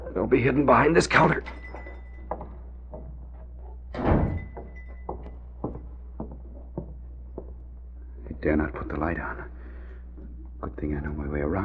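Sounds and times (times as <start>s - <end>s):
speech: 0.2s - 1.6s, 8.4s - 9.5s, 10.6s - 11.6s
shuffling footsteps: 1.4s - 8.4s
front door opening and closing: 3.4s - 5.4s
heavy thud: 4.0s - 4.6s.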